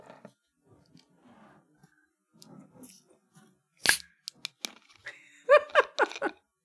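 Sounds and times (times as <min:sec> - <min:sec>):
can of caramel frappuccino cracking open: 0:03.8 - 0:04.8
laughter: 0:05.1 - 0:06.4.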